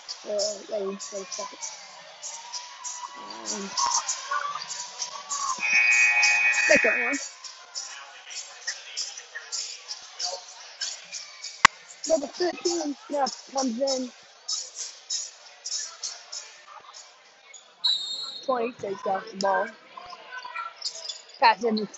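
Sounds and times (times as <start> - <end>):
crowd noise in a gym: 0.0 - 21.9
speech: 0.2 - 2.4, 3.2 - 4.5, 6.7 - 7.4, 12.1 - 14.2, 18.5 - 19.8, 21.4 - 21.9
basketball gym buzzer blaring: 5.6 - 7.2.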